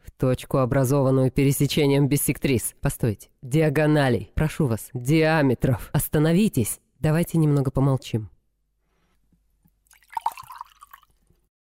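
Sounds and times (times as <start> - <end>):
speech: 0.2 - 8.3
water pouring into a glass: 9.8 - 11.5.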